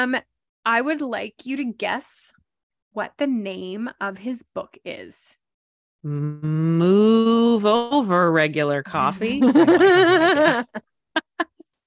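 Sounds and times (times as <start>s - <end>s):
speech: 0.0s - 5.4s, 6.0s - 10.9s
person imitating a cow mooing: 6.0s - 7.6s
laughter: 9.3s - 11.5s.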